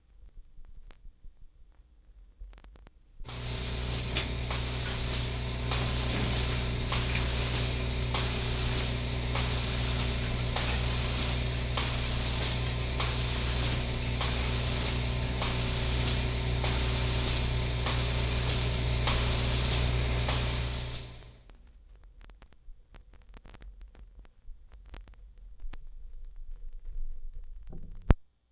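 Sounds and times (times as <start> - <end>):
milking machine: 3.3 - 21.4.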